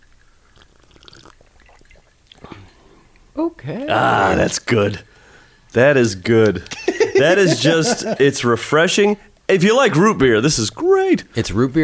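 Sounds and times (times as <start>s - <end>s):
sipping a root beer cocktail: 0.0s - 3.4s
speech: 3.4s - 5.1s, 5.7s - 11.8s
laughter: 6.7s - 8.5s.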